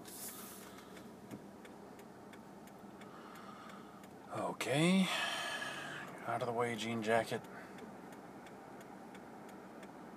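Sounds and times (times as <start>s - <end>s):
air conditioner starting up and running with a whirring hum: 0.0s - 10.1s
speech: 4.3s - 5.3s, 6.3s - 7.6s.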